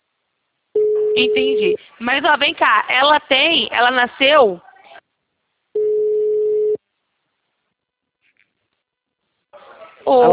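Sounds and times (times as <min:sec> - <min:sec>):
telephone busy tone after a dropped call: 0:00.8 - 0:01.8, 0:05.8 - 0:06.8
speech: 0:01.2 - 0:04.7, 0:10.0 - 0:10.3.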